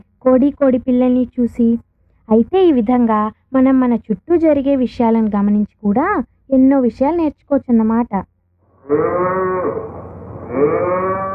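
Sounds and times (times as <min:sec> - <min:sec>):
speech: 0:00.2 - 0:08.3, 0:08.9 - 0:11.3
water buffalo lowing at milking time: 0:08.7 - 0:11.3.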